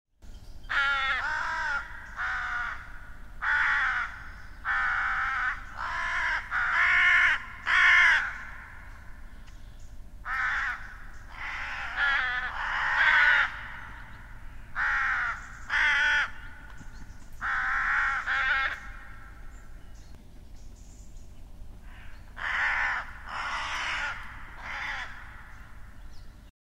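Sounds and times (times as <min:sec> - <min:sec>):
crow: 0:00.7 - 0:09.0, 0:10.2 - 0:19.4, 0:21.9 - 0:25.8.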